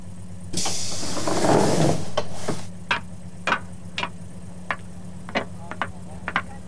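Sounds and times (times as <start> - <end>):
low steady hum: 0.0 - 6.6
train doors sliding open with a pneumatic hiss: 0.5 - 2.7.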